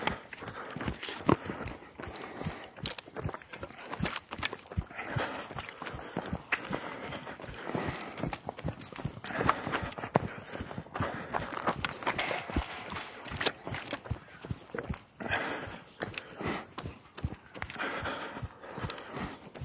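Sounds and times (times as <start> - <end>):
hooves of several horses walking on hard ground: 0.0 - 19.6.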